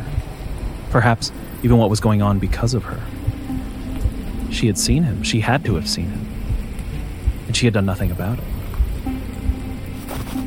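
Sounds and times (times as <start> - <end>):
low thumps: 0.0 - 10.4
rain pattering on wet asphalt: 0.0 - 10.4
speech: 0.9 - 3.2, 4.5 - 6.3, 7.6 - 8.5.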